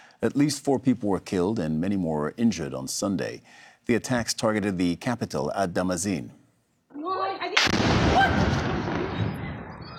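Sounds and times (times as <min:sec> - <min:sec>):
speech: 0:00.2 - 0:06.4
powerful explosion at a weapons depot: 0:07.6 - 0:09.9.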